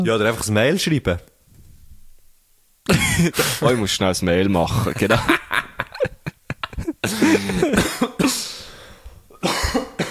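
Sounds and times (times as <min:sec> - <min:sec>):
speech: 0:00.0 - 0:01.3, 0:02.9 - 0:05.5, 0:07.0 - 0:07.8
person coughing with a throaty rasp: 0:02.9 - 0:03.8, 0:06.8 - 0:08.6, 0:09.3 - 0:10.0
laughter: 0:04.8 - 0:07.8.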